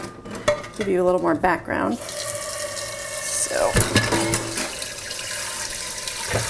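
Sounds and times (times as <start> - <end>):
speech: 0.8 - 2.2
water running from a kitchen tap into a cooking pot for boiling pasta: 1.9 - 6.4
cooking pot clunks: 3.7 - 4.8, 6.2 - 6.4.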